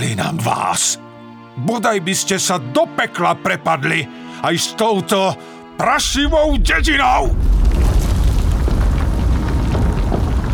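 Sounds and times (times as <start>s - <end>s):
speech: 0.1s - 7.5s
deep rumbling from beneath the earth: 6.0s - 10.5s.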